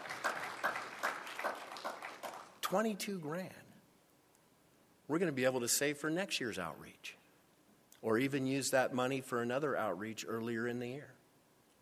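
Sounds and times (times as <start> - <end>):
church congregation clapping rhythmically: 0.0 - 2.7
speech: 2.7 - 3.7, 5.1 - 7.2, 8.0 - 11.2.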